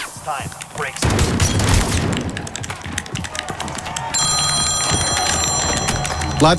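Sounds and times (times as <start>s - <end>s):
speech: 0.2s - 2.6s, 6.4s - 6.5s
mobile phone ringing with a high electronic ringtone: 4.2s - 6.5s.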